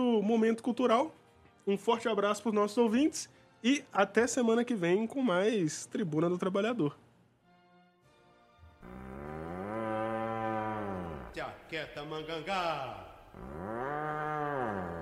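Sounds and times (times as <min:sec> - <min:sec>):
speech: 0:00.0 - 0:07.0, 0:11.7 - 0:13.9
ox mooing: 0:08.8 - 0:11.5, 0:13.3 - 0:15.0.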